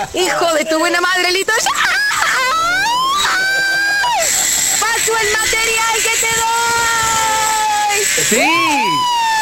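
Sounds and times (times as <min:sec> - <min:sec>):
speech: 0:00.0 - 0:02.5, 0:05.0 - 0:09.2
laughter: 0:01.6 - 0:05.7
person screaming while riding a zipline: 0:01.7 - 0:04.4, 0:06.7 - 0:09.3.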